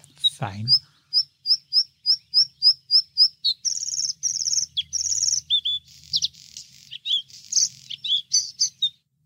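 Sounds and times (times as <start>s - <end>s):
bluethroat singing: 0.0s - 9.2s
speech: 0.4s - 0.8s.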